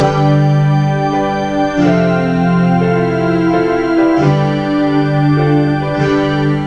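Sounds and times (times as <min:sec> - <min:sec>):
guitar: 0:00.0 - 0:06.6.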